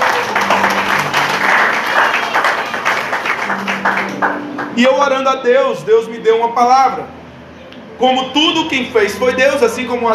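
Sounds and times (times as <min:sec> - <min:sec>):
crowd applauding: 0:00.0 - 0:05.3
speech: 0:04.8 - 0:07.2, 0:08.0 - 0:10.1.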